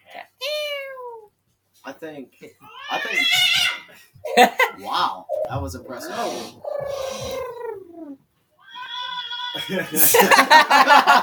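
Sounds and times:
speech: 2.0s - 7.5s, 9.6s - 11.2s
cats meowing: 2.6s - 10.4s
laughter: 4.2s - 5.0s, 9.6s - 11.2s.

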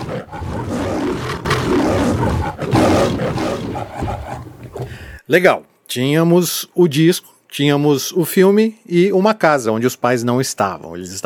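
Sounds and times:
lion roaring at film opening: 0.0s - 5.0s
speech: 5.3s - 11.2s.

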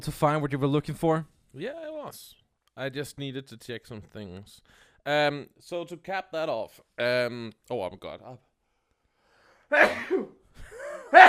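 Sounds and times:
speech: 0.0s - 8.5s, 9.7s - 10.4s, 11.1s - 11.2s
person sneezing: 9.7s - 10.4s.

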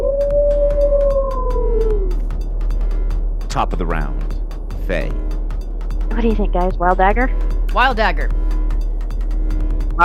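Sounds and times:
wolf howling: 0.0s - 2.3s
low rumble: 0.0s - 10.0s
speech: 3.6s - 5.4s, 6.2s - 8.4s.

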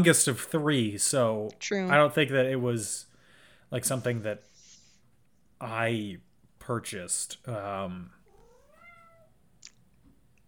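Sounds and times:
speech: 0.0s - 3.1s, 3.7s - 4.5s, 5.6s - 8.2s
cat meowing: 8.3s - 9.3s.

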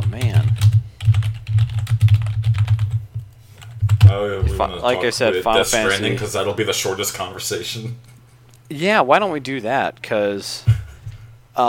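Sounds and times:
typing on a computer keyboard: 0.0s - 4.1s
low hum: 0.0s - 11.6s
speech: 4.1s - 8.1s, 8.7s - 10.8s.

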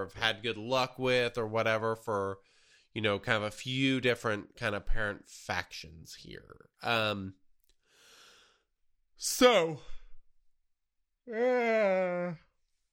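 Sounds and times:
speech: 0.0s - 7.4s, 9.2s - 10.0s, 11.2s - 12.5s
person yawning out loud: 11.3s - 12.6s.

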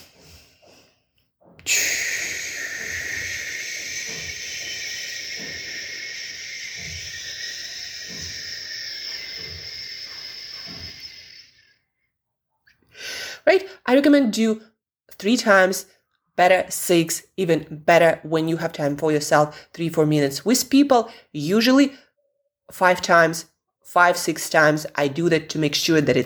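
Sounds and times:
slow exhale through pursed lips in a relaxation breathing exercise: 0.0s - 11.8s
speech: 1.7s - 2.0s, 13.9s - 22.0s, 22.7s - 26.2s.

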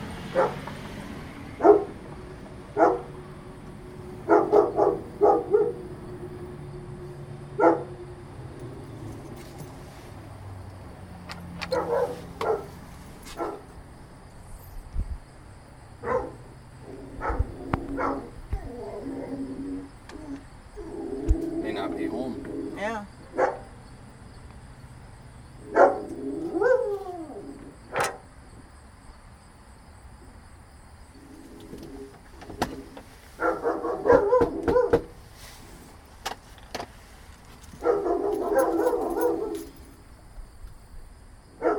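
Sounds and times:
two large dogs barking deeply: 0.0s - 0.9s, 1.5s - 8.3s, 11.7s - 13.8s, 15.9s - 23.9s, 25.6s - 28.3s, 33.3s - 35.2s, 37.8s - 40.0s, 41.5s - 41.7s
dog yips and whines: 11.7s - 12.7s, 17.0s - 21.8s, 25.7s - 28.2s, 33.4s - 35.0s, 37.8s - 39.7s.

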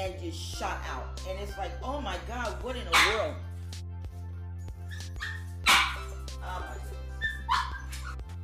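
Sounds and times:
speech: 0.0s - 3.9s, 6.4s - 7.6s
dog barking: 2.9s - 3.4s, 4.9s - 6.2s, 7.2s - 8.2s
dog whimpering and yipping: 4.8s - 8.3s.

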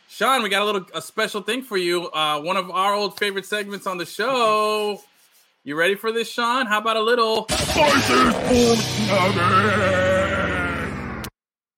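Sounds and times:
speech: 0.2s - 10.4s
radio imaging stinger sound effect: 7.5s - 11.3s.

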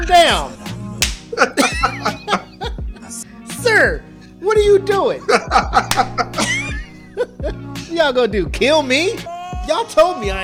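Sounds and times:
speech: 0.1s - 0.6s, 1.4s - 1.7s, 3.8s - 6.2s, 8.0s - 10.4s
sharp loud slaps of someone slapping people in a hangar: 1.0s - 1.4s, 5.9s - 6.3s
people laughing: 1.3s - 3.2s, 5.2s - 8.0s
excited voices: 9.2s - 10.4s.

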